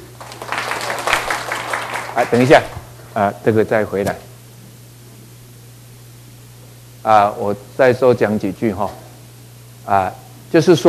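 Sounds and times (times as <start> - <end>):
audience applause: 0.0 - 2.8
low electrical hum: 0.0 - 10.8
speech: 2.2 - 4.3, 7.0 - 9.0, 9.8 - 10.8.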